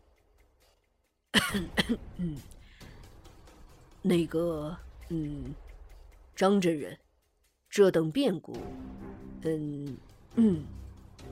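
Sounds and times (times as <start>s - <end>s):
light cough from a master just out of shock: 1.4s - 2.5s
speech: 1.5s - 2.5s, 4.0s - 5.6s, 6.4s - 7.0s, 7.7s - 10.8s.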